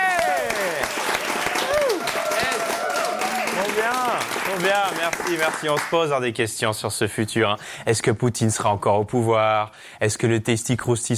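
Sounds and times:
voices cheering and calling out: 0.0s - 5.4s
audience applauding with dense continuous clapping: 0.0s - 6.2s
speech: 3.8s - 11.1s.

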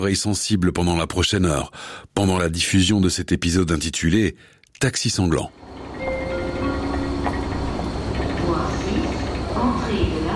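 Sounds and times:
speech: 0.0s - 5.9s
low rumble and hum of trains at a railway station: 5.4s - 10.3s.

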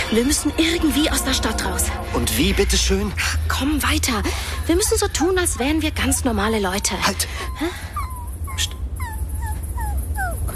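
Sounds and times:
steady low rumble: 0.0s - 10.5s
speech: 0.1s - 7.9s
dog whimpering: 6.4s - 10.5s.

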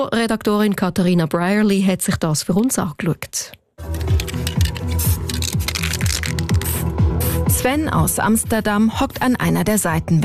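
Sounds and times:
speech: 0.0s - 4.0s, 7.6s - 10.2s
spray paint can spraying on a wall: 3.8s - 7.5s
music with a thumping bass beat: 3.8s - 8.6s.

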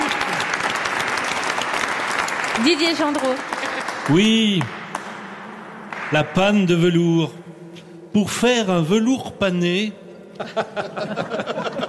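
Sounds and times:
audience applause: 0.0s - 6.4s
speech: 2.6s - 4.8s, 6.1s - 7.4s, 8.2s - 11.8s
laughter: 10.3s - 11.8s.

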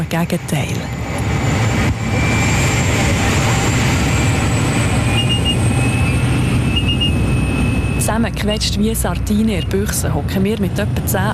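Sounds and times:
propeller plane engine roar inside small airplane cabin: 0.0s - 11.3s
speech: 0.1s - 1.3s, 8.1s - 11.3s
thin whining tone: 0.9s - 10.0s.

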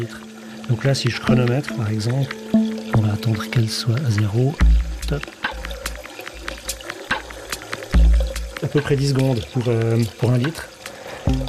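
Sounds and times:
speech: 0.0s - 5.4s, 8.6s - 10.7s, 11.3s - 11.4s
water running from an open tap through a meter: 0.0s - 11.4s.

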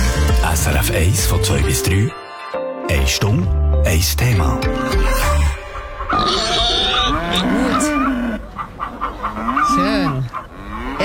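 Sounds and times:
speech: 0.5s - 2.2s, 2.9s - 5.4s, 6.1s - 6.6s
pig grunting: 6.1s - 11.0s.

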